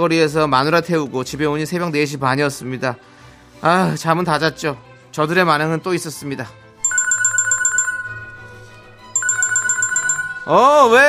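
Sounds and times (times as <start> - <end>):
speech: 0.0 - 6.6, 10.5 - 11.0
phone ringing: 6.8 - 11.0.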